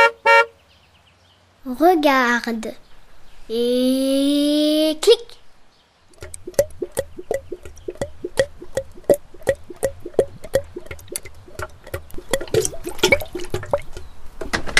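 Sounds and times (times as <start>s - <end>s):
car horn honks: 0.0s - 0.6s
speech: 1.7s - 2.9s, 3.5s - 5.4s
gasoline glugging into a car's fuel tank: 6.2s - 14.2s.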